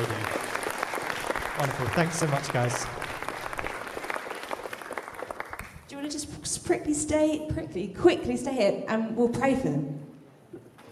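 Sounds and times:
crowd applauding: 0.0s - 6.0s
speech: 1.6s - 3.0s, 6.7s - 10.0s.

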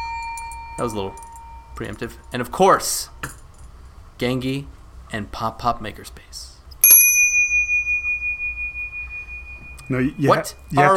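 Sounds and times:
small bell struck with a bright clear ding: 0.0s - 1.9s, 6.8s - 10.2s
speech: 0.8s - 3.4s, 4.2s - 6.5s, 9.9s - 10.9s.

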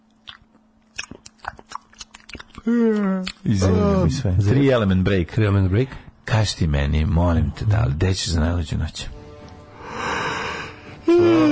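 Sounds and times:
speech: 2.6s - 9.2s
person yawning: 2.7s - 4.2s, 11.0s - 11.4s.

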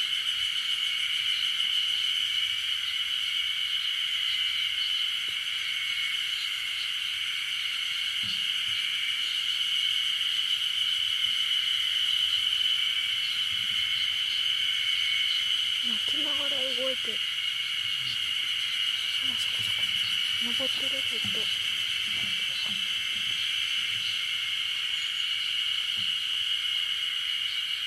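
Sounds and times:
dense steady chorus of insects in a forest at night: 0.0s - 27.8s
short faint lower calls, possibly a voice or animal: 19.0s - 23.5s.

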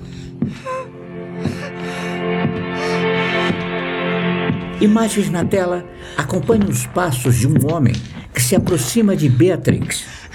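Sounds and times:
badly beaten woman breathing heavily in short strained gasps: 0.0s - 3.0s, 10.1s - 10.3s
low sustained droning tone: 0.0s - 8.2s
speech: 0.4s - 2.3s, 4.8s - 10.2s.

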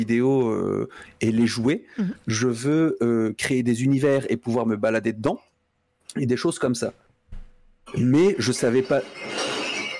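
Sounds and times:
speech: 0.0s - 5.5s, 6.1s - 7.0s, 7.9s - 9.5s
glass bottles being emptied out by a neighbour: 8.5s - 9.9s.

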